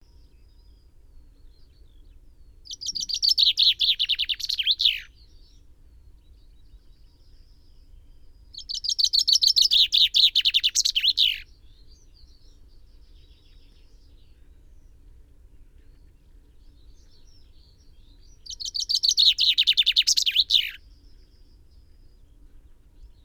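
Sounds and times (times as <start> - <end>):
common chaffinch Fringilla coelebs singing: 2.6 - 5.4, 8.4 - 14.3, 16.7 - 21.7.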